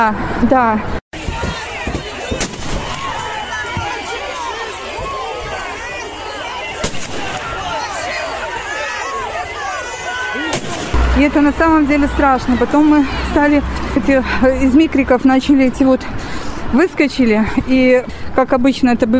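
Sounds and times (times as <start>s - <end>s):
speech: 0.0s - 1.0s, 11.2s - 19.1s
dense agitated crowd shouting and clamoring: 1.2s - 14.0s
sharp loud blasts: 10.5s - 12.8s.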